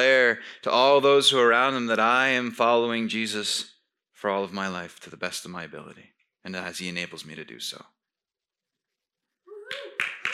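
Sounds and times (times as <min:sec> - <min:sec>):
speech: 0:00.0 - 0:08.0
listener cheering woohoo: 0:09.5 - 0:10.3
sharp hand claps from a listener in the audience: 0:09.7 - 0:10.3.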